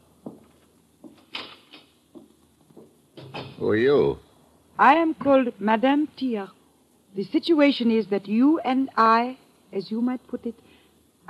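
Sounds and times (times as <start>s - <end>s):
soft knocks and thuds: 0.2s - 3.6s
door closing with latch click as someone leaves the room: 3.2s - 3.7s
speech: 3.6s - 4.2s, 4.8s - 10.7s.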